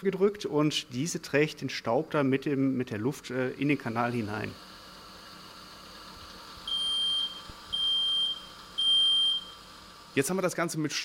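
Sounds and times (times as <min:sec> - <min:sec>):
speech: 0:00.0 - 0:04.7, 0:10.2 - 0:11.0
smoke detector alarm beeping: 0:06.7 - 0:09.7.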